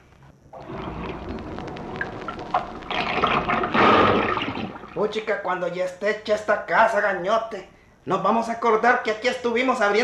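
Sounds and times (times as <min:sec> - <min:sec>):
water pouring into a bottle: 0:00.5 - 0:05.1
speech: 0:05.0 - 0:10.0.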